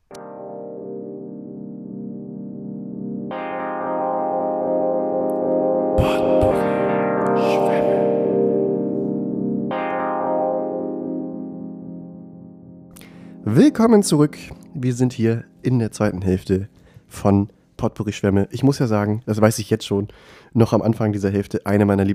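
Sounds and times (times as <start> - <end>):
instrumental music interlude with layered synth chords: 0.0 - 16.9
speech: 13.6 - 22.1.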